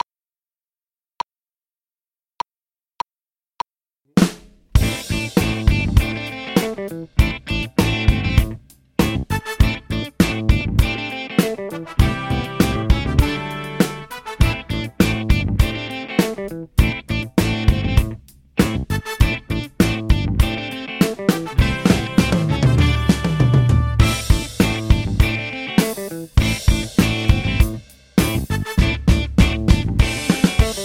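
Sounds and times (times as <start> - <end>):
drums: 4.1 - 30.8
guitar: 4.8 - 30.8.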